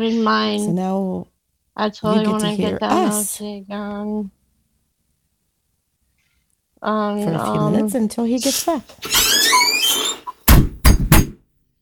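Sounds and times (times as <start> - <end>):
speech: 0.0 - 4.4, 6.8 - 9.3
door squeaking open: 8.5 - 10.7
loud thuds: 10.2 - 11.4.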